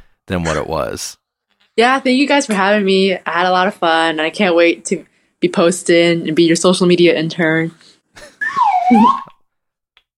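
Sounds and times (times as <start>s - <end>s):
speech: 0.3s - 1.2s, 1.8s - 8.3s, 8.9s - 9.3s
slide whistle: 8.4s - 9.4s.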